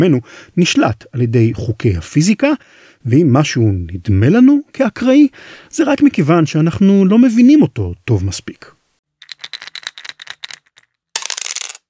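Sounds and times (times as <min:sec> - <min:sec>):
speech: 0:00.0 - 0:08.8
backgammon dice rattling in a cup: 0:09.2 - 0:11.8.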